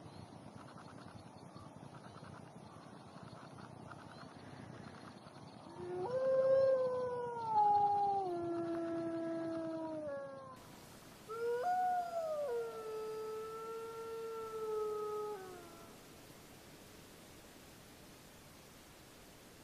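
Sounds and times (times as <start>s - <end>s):
wolf howling: 5.7s - 10.6s, 11.3s - 16.0s.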